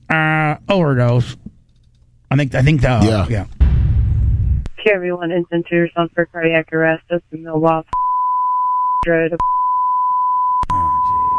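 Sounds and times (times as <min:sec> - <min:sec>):
speech: 0:00.1 - 0:01.5, 0:02.3 - 0:03.6, 0:04.8 - 0:08.0, 0:09.0 - 0:09.6
radio-like dispatch voice: 0:03.0 - 0:03.4
censor beep over 911 dispatch recording: 0:07.9 - 0:11.3.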